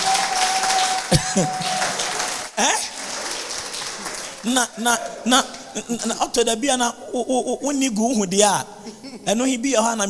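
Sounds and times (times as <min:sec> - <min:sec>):
crowd clapping: 0:00.0 - 0:06.0
speech: 0:01.1 - 0:01.7, 0:02.6 - 0:02.8, 0:04.4 - 0:10.0.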